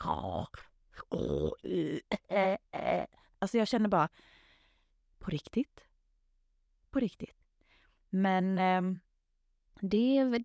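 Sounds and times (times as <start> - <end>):
speech: 0.0 - 4.4, 5.2 - 5.9, 6.9 - 7.4, 8.1 - 9.0, 9.8 - 10.4
person imitating a man's morning throat-clearing: 1.0 - 3.1.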